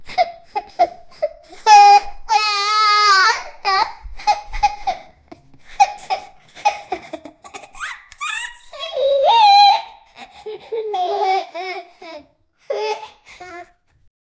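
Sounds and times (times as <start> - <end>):
one-year-old toddler laughing: 0.1 - 5.1, 5.7 - 13.7.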